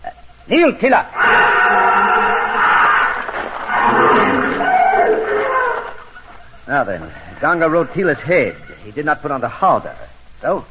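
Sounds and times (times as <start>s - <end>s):
speech: 0.5s - 1.4s, 6.7s - 10.6s
elephant trumpeting: 1.2s - 6.1s.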